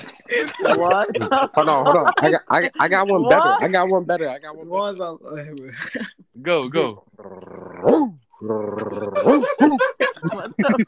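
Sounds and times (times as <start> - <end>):
laughter: 0.0 - 3.8, 8.8 - 10.8
speech: 0.3 - 10.8
person imitating a hound dog baying howl: 7.8 - 9.8.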